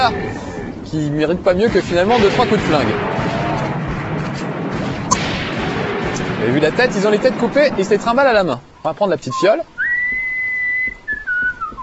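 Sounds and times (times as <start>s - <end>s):
speech: 0.0s - 3.2s, 6.4s - 9.8s
faint hum: 0.0s - 11.8s
soft low thumps: 0.0s - 11.8s
character whistling a melody: 9.8s - 11.8s.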